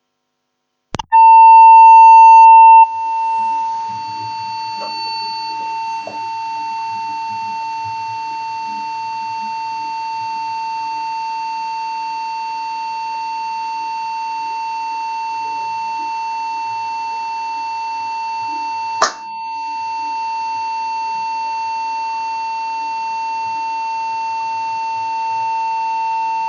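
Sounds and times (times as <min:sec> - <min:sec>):
15000 Hz tone: 0:01.0 - 0:08.4.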